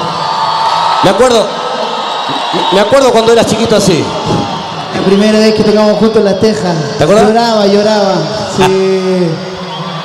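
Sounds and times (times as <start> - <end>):
single loud whoop: 0.0 - 5.2, 8.9 - 10.0
crowd applauding and cheering: 0.0 - 10.0
speech: 1.0 - 1.6, 2.3 - 9.5.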